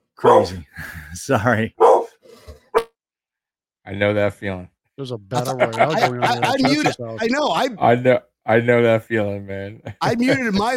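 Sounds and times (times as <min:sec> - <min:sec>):
dogs barking: 0:00.2 - 0:00.6, 0:01.8 - 0:02.9
speech: 0:00.2 - 0:01.9, 0:03.9 - 0:10.7
laughter: 0:05.3 - 0:07.7, 0:09.8 - 0:10.7.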